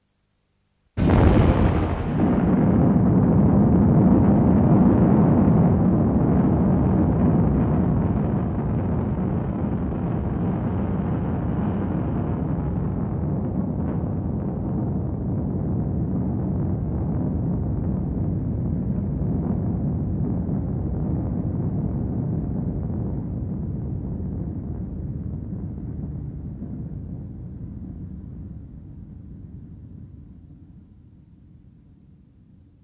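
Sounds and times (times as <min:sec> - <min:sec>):
explosion with long low rumble: 0:01.0 - 0:27.2.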